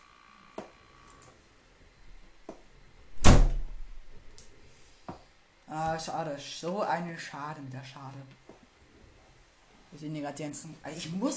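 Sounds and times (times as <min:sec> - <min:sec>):
door closing with a solid thud: 0:03.2 - 0:04.0
speech: 0:06.0 - 0:08.4, 0:09.9 - 0:11.3.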